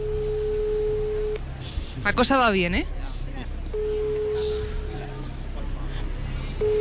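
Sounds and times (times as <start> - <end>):
ringback tone through a phone speaker: 0.0 - 1.4, 3.7 - 4.9, 6.6 - 6.8
voices and chatter: 0.0 - 6.8
speech: 2.0 - 3.0.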